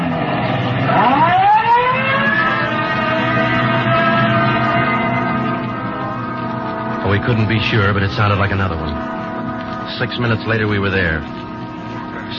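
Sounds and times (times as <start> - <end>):
police car engine rumble: 0.0 - 12.3
police car siren wailing: 0.0 - 12.3
speech: 7.2 - 9.2, 9.9 - 11.4.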